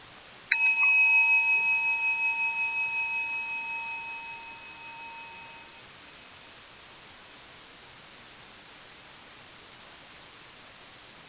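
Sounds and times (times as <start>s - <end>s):
gong struck to begin meditation: 0.5s - 5.8s.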